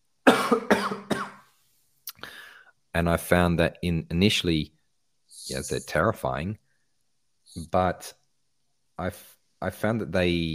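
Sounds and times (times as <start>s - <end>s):
person coughing: 0.3s - 1.5s
speech: 0.5s - 0.9s, 2.9s - 4.8s, 5.5s - 6.6s, 7.6s - 8.2s, 9.0s - 10.5s.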